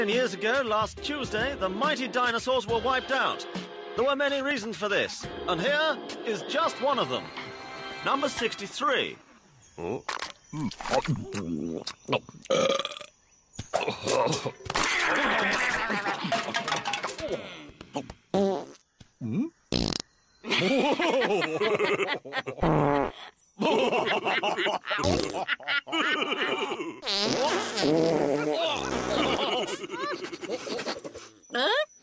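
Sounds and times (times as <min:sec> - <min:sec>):
speech: 0:00.0 - 0:09.2, 0:09.8 - 0:13.1, 0:13.8 - 0:18.5, 0:19.2 - 0:19.6, 0:20.6 - 0:31.9
laughter: 0:14.8 - 0:16.7, 0:20.5 - 0:22.6, 0:23.2 - 0:27.0, 0:28.4 - 0:31.3
exaggerated sputtering dinosaur fart noises: 0:18.0 - 0:20.1, 0:22.6 - 0:23.3, 0:25.0 - 0:25.4, 0:27.0 - 0:29.4.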